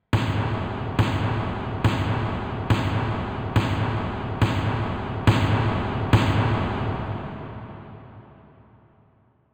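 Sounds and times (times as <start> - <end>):
horror snare drum hit: 0.2 - 8.2.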